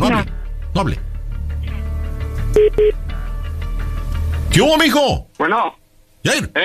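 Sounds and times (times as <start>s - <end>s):
low hum: 0.0s - 6.6s
speech: 0.8s - 1.1s, 2.6s - 3.0s, 4.5s - 6.6s
electronic telephone keypad dialing beeps: 2.6s - 3.0s.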